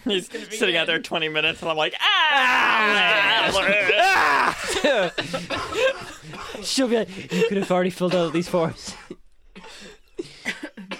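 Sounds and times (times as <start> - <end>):
speech: 0.0 - 9.1
laughter: 2.6 - 9.0
harsh raspy coughs: 4.6 - 10.9.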